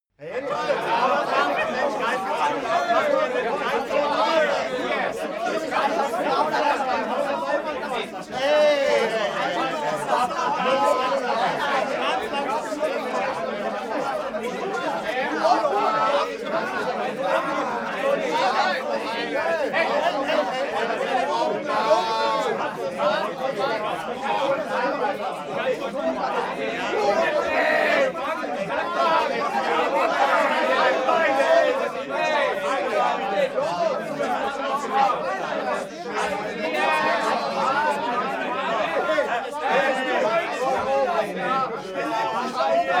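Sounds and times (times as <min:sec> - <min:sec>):
grumpy male crowd: 0:00.2 - 0:42.9.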